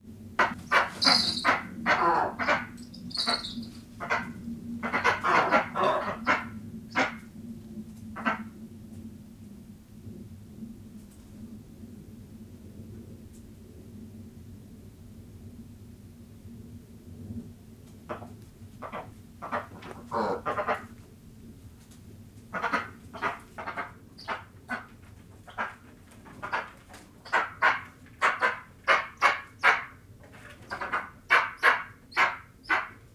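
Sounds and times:
eastern imperial eagles calling in nature at Gores farm: 0.4s - 7.2s, 18.1s - 21.0s, 22.5s - 33.1s.

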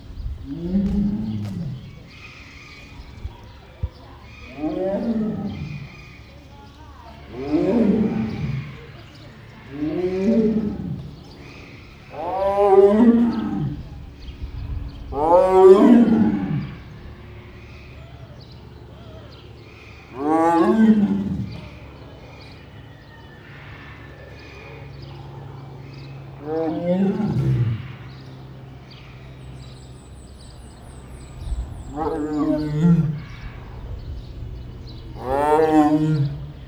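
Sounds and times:
white tiger roaring in a zoo: 0.0s - 18.1s, 20.0s - 22.6s, 23.6s - 36.6s.

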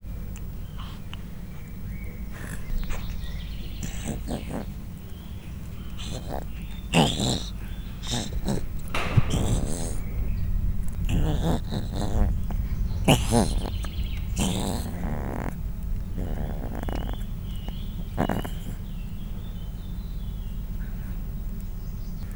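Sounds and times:
three-week-old leopard cubs: 0.0s - 22.3s.

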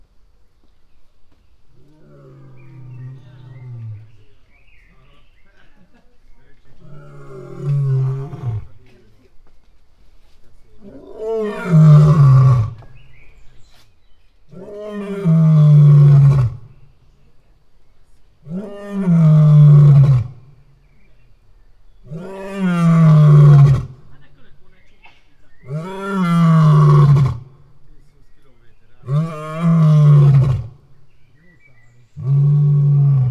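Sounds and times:
lion roaring at Veszprém zoo: 6.8s - 8.8s, 10.8s - 12.9s, 14.5s - 16.8s, 18.5s - 20.4s, 22.1s - 24.1s, 25.6s - 27.6s, 29.0s - 30.8s, 32.0s - 33.3s.

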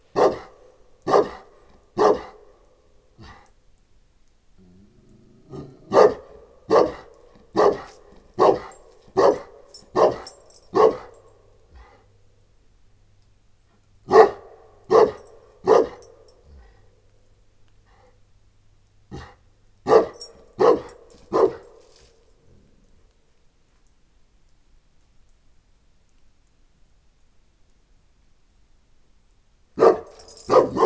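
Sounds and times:
Saint Bernard and Moscow Watchdog mix dog in a farmyard in Eger: 0.1s - 2.5s, 3.2s - 3.6s, 4.8s - 12.1s, 14.1s - 16.9s, 19.1s - 22.8s, 29.8s - 30.8s.

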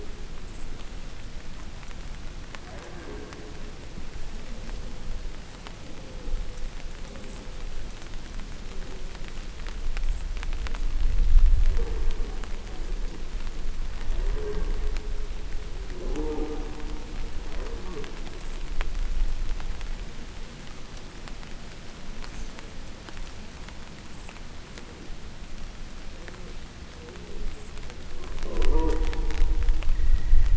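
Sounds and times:
rain: 0.0s - 30.5s
wind: 0.0s - 30.5s
red deer stags bellowing: 11.5s - 18.8s, 27.1s - 30.5s.

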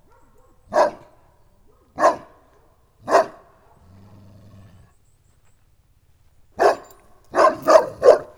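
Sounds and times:
St. Bernard farmyard dog barking: 0.0s - 3.9s, 6.6s - 8.3s.

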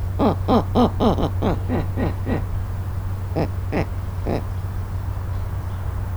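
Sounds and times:
laughter: 0.0s - 4.5s
startled snowy owl at Nyíregyháza zoo: 0.0s - 6.0s.

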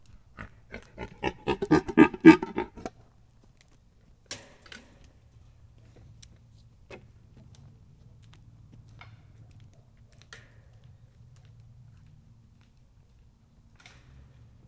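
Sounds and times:
fallow deer snorting: 0.2s - 2.9s.

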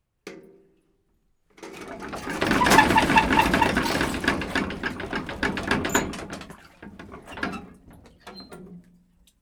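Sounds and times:
bucket running down under its own weight into a wheeled well: 1.6s - 8.9s.

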